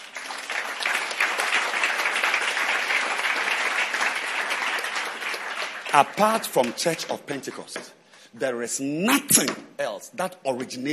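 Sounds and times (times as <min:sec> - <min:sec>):
large audience applause: 0:00.0 - 0:07.1
speech: 0:05.9 - 0:10.9.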